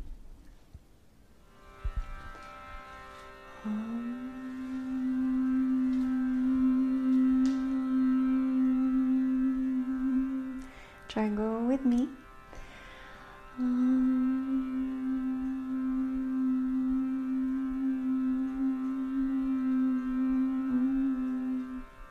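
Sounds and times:
steady sustained tone: 1.4s - 22.0s
person humming on one pitch: 3.6s - 12.2s, 13.5s - 22.0s
speech: 11.2s - 12.2s.

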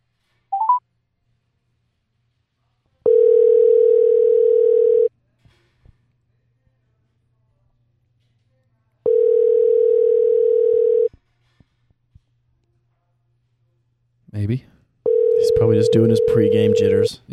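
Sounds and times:
long steady electronic phone ring tones: 0.6s - 0.8s, 3.1s - 5.1s, 9.1s - 11.1s, 15.1s - 17.1s
short rising chirp on a phone line: 0.6s - 0.8s
speech: 15.9s - 17.3s.

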